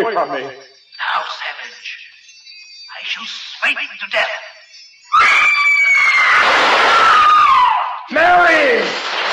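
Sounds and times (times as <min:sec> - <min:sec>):
speech: 0:00.2 - 0:02.0, 0:03.0 - 0:04.6, 0:05.2 - 0:06.5, 0:08.1 - 0:09.2
woman's shrill piercing scream: 0:05.1 - 0:08.0.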